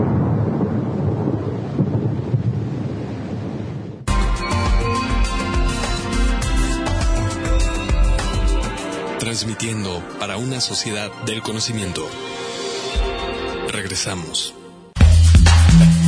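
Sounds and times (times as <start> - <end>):
loud rolling electrical thunderstorm rumble: 0.0 - 4.2
music: 4.1 - 16.0
speech: 9.6 - 12.4, 13.9 - 14.6.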